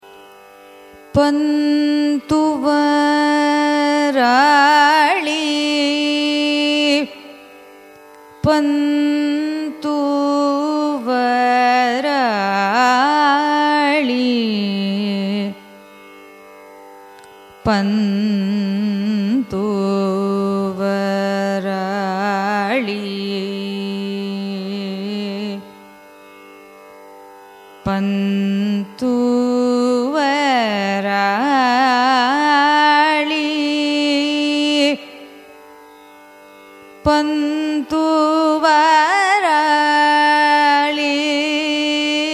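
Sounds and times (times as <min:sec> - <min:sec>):
Carnatic music in raga Pantuvarali: 0:00.0 - 0:42.3.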